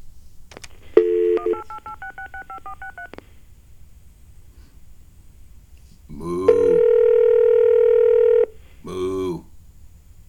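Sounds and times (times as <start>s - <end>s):
faint hum: 0.0s - 10.2s
touch-tone telephone keypad beeps dialing a toll-free number: 1.0s - 3.1s.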